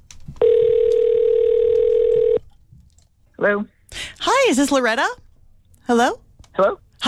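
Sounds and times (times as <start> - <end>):
faint low noise: 0.0 - 7.0
steady telephone tone as a phone call is placed: 0.4 - 2.4
speech: 3.4 - 3.8, 4.4 - 5.2, 5.9 - 7.0.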